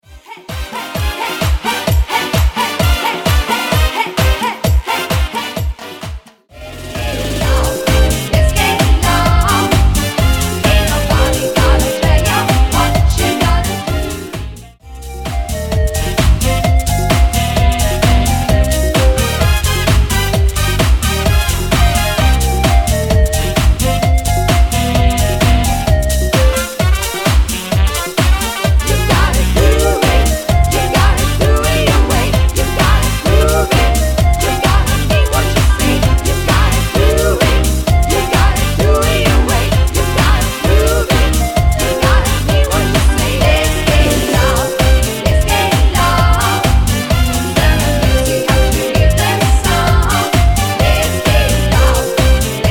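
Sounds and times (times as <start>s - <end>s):
cha cha cha group dance song with singing: 0.1s - 52.6s.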